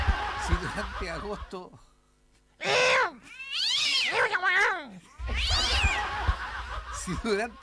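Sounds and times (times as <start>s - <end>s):
laughter: 0.0s - 1.7s, 5.2s - 7.6s
speech: 0.8s - 1.9s, 7.1s - 7.6s
cats yowling and fighting on a roof: 2.6s - 6.0s.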